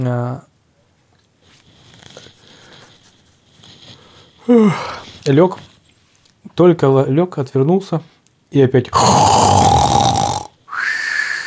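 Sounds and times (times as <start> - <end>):
speech: 0.0 - 0.5, 4.5 - 5.7, 6.6 - 9.3
person vocally imitating a loud snore: 8.9 - 11.4.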